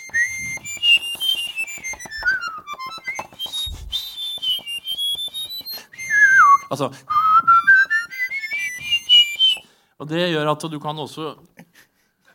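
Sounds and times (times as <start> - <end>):
high-pitched two-tone whistling: 0.0 - 9.7
speech: 6.7 - 7.2, 10.0 - 11.5.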